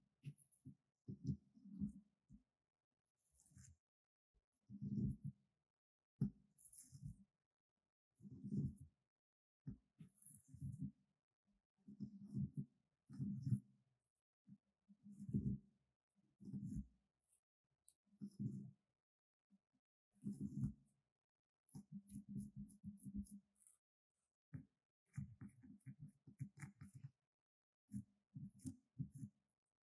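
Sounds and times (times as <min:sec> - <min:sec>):
soft scratching on wood, glass and plastic: 0:00.2 - 0:02.1, 0:03.2 - 0:03.8, 0:04.7 - 0:05.4, 0:06.2 - 0:07.3, 0:08.2 - 0:09.0, 0:10.0 - 0:11.0, 0:11.9 - 0:13.7, 0:15.0 - 0:15.7, 0:16.4 - 0:18.8, 0:20.1 - 0:21.0, 0:21.7 - 0:27.2, 0:27.9 - 0:29.4.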